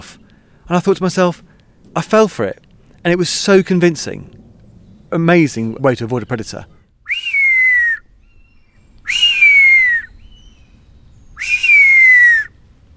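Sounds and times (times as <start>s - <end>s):
speech: 0.0s - 4.4s, 5.1s - 6.8s
person whistling an imitation of an adult buzzard's mewing call: 7.1s - 8.0s, 9.0s - 10.2s, 11.4s - 12.5s.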